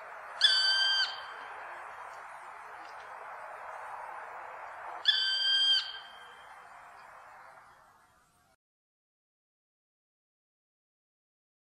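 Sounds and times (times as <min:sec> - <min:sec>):
black woodpecker whistled call: 0:00.4 - 0:01.5, 0:05.0 - 0:06.6.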